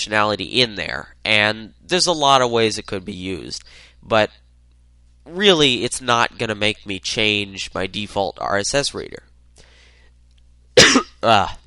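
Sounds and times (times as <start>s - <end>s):
speech: 0.0s - 4.4s, 5.3s - 9.3s, 11.2s - 11.6s
harsh coughs: 10.8s - 11.2s.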